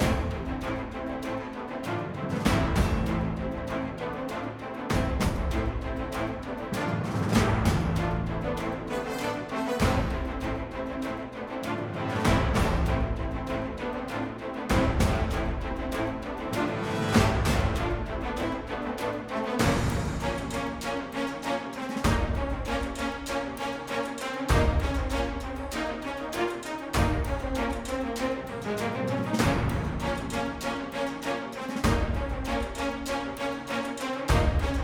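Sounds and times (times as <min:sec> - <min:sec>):
orchestral fantasy combat music loop: 0:00.0 - 0:34.8.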